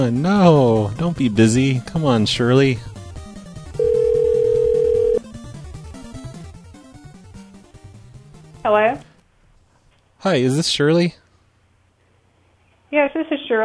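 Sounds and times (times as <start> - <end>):
speech: 0.0 - 2.9, 8.7 - 9.1, 10.2 - 11.2, 12.9 - 13.6
steady telephone line tone while redialing: 3.4 - 7.4.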